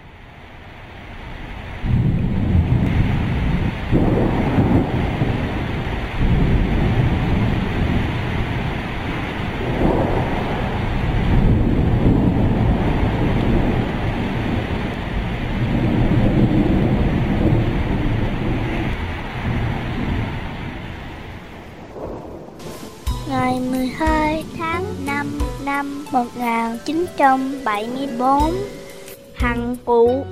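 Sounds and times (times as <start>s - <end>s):
gusting wind: 0.0s - 29.1s
steady rain: 0.0s - 30.0s
deep rolling thunder: 1.2s - 25.3s
speech: 26.2s - 28.8s, 29.4s - 30.2s.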